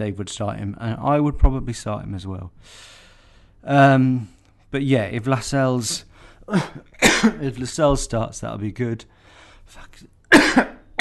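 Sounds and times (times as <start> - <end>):
speech: 0.0 - 3.0, 3.6 - 10.8
loud harsh cough: 6.5 - 7.4, 10.3 - 10.9.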